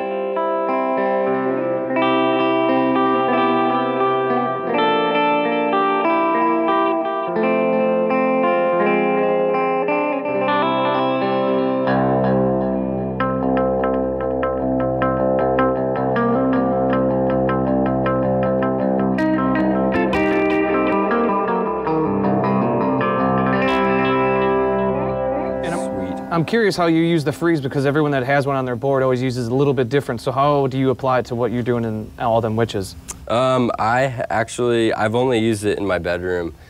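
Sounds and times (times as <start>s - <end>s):
distorted electric guitar through fuzz, delay and amp reverb: 0.0s - 28.0s
speech: 26.4s - 36.6s.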